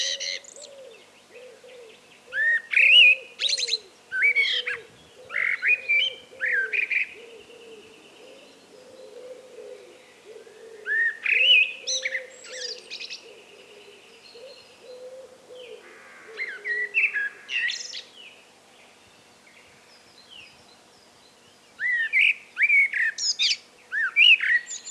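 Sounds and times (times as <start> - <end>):
common blackbird Turdus merula song: 0.0 - 24.8.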